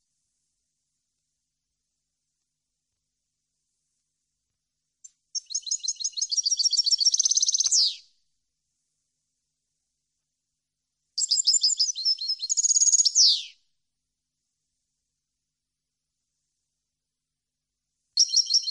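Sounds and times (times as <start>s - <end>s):
European goldfinch song: 5.0s - 8.1s, 11.2s - 13.6s, 18.2s - 18.6s.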